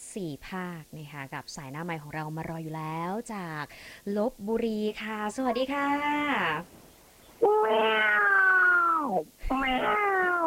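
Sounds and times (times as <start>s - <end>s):
speech: 0.2s - 6.8s, 7.4s - 10.0s
cat meowing: 7.4s - 10.4s.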